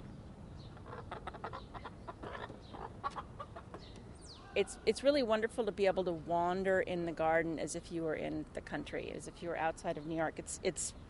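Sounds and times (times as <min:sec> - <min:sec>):
Araucana hens clucking: 0:00.7 - 0:03.9
speech: 0:04.6 - 0:11.0.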